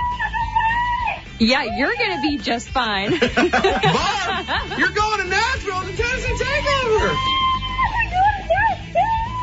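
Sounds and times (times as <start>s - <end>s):
woman's excited high-pitched screams through a telephone line: 0.0s - 2.6s, 6.6s - 9.4s
speech: 1.4s - 7.4s
laughter: 3.0s - 7.3s.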